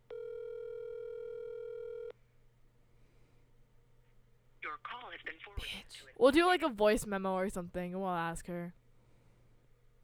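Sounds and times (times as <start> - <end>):
steady electronic phone ringback tone: 0.1 - 2.1
speech: 4.8 - 8.8.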